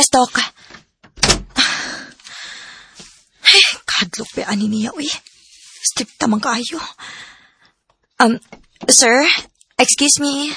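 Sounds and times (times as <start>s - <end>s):
speech: 0.0s - 0.6s, 4.2s - 7.3s, 8.2s - 10.5s
door being shut in a doctor's clinic: 1.0s - 1.6s.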